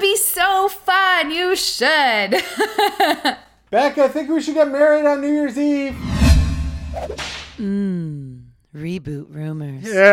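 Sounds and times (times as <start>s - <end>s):
speech: 0.7s - 6.1s, 6.9s - 10.1s
whip swish and crack: 6.8s - 7.6s.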